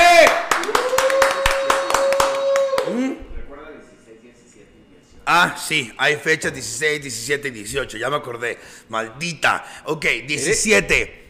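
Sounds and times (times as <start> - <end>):
small audience clapping: 0.0 - 3.1
speech: 5.7 - 11.2.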